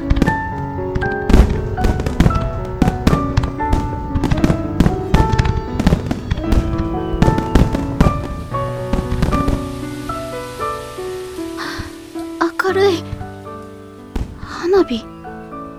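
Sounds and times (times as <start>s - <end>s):
fireworks crackling and booming in a rapid barrage: 0.0s - 12.4s
sustained tonal backdrop: 0.0s - 15.7s.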